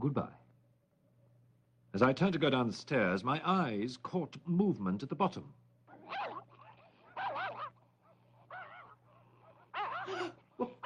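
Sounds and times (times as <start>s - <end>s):
speech: 0.0s - 0.4s, 2.0s - 6.3s
wolves snarling and growling: 5.9s - 7.7s, 8.4s - 10.8s.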